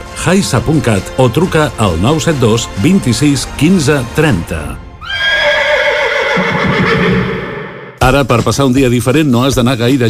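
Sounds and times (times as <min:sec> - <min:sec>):
speech: 0:00.2 - 0:04.8, 0:08.0 - 0:10.0
pony neighing: 0:05.0 - 0:07.9.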